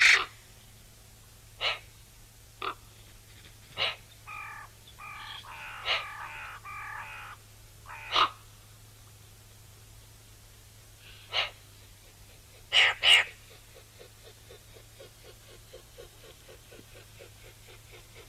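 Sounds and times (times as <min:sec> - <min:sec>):
low steady hum: 0:00.0 - 0:18.2
Eurasian magpie Pica pica clicking and buzzy nasal calls: 0:01.6 - 0:01.9, 0:02.6 - 0:02.8, 0:03.7 - 0:08.4, 0:11.3 - 0:18.2.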